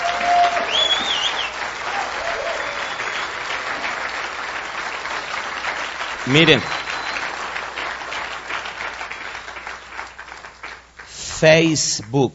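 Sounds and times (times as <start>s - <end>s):
whistle: 0.0s - 1.6s, 2.4s - 3.4s, 6.3s - 7.4s
church congregation applauding during a service: 0.0s - 11.7s
speech: 6.3s - 6.8s, 11.4s - 12.3s.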